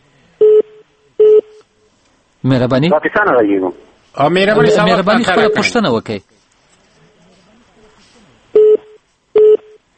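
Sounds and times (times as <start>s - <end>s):
speech: 2.4s - 6.3s
telephone busy tone beeps after a call disconnects: 8.6s - 9.8s.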